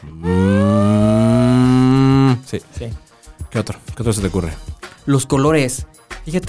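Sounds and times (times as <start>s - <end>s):
cow mooing: 0.2s - 2.4s
speech: 2.5s - 6.4s.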